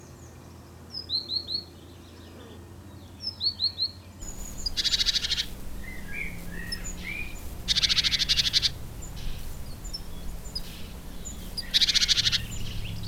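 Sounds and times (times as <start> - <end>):
great tit Parus major call: 4.2 - 13.0.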